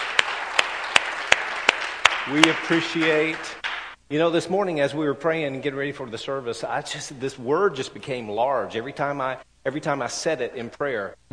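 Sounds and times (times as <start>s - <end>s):
audience applause: 0.0s - 4.0s
sharp individual claps: 0.0s - 4.0s
speech: 2.3s - 11.3s.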